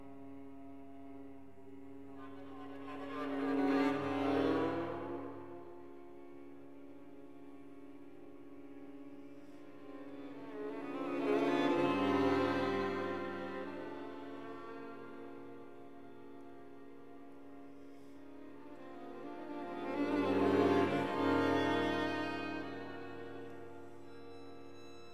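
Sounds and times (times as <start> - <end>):
string quartet playing: 1.6 - 25.1.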